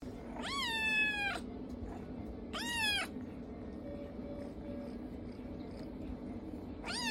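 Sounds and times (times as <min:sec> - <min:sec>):
low background hum: 0:00.0 - 0:07.1
kitten meowing: 0:00.3 - 0:01.4, 0:02.5 - 0:03.1, 0:06.8 - 0:07.1.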